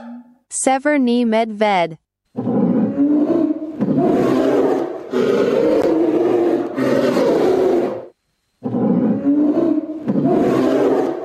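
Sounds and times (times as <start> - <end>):
speech: 0.6 - 2.0
tiger roaring: 2.4 - 11.2.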